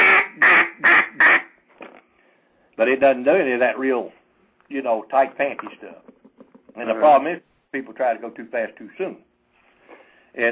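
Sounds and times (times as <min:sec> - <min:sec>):
duck call blown in raspy quacks: 0:00.0 - 0:01.6
speech: 0:02.8 - 0:06.1, 0:06.8 - 0:09.3, 0:10.3 - 0:10.5.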